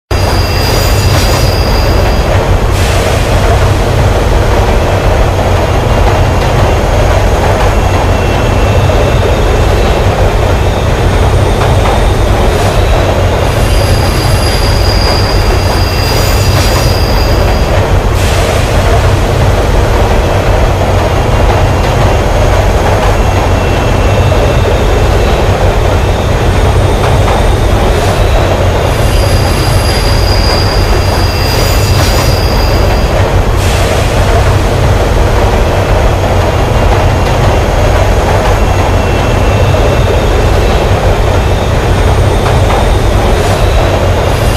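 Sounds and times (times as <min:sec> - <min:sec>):
subway train: 0:00.0 - 0:44.5.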